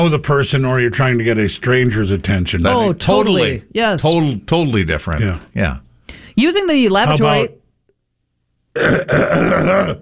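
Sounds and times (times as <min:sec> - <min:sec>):
speech: 0:00.0 - 0:07.6, 0:08.8 - 0:10.0
loud deliberate hacking throat clear: 0:08.7 - 0:10.0.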